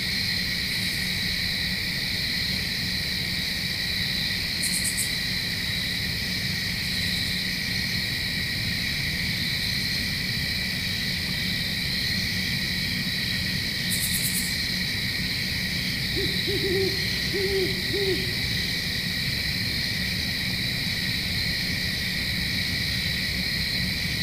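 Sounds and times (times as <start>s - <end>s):
crickets chirring: 0.0s - 24.2s
owl hooting: 16.1s - 18.9s.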